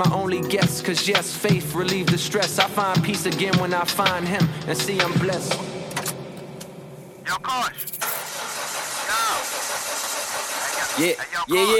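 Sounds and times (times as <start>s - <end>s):
speech: 0.0s - 5.8s, 11.0s - 11.7s
car engine cranking, failing to start: 7.8s - 11.2s.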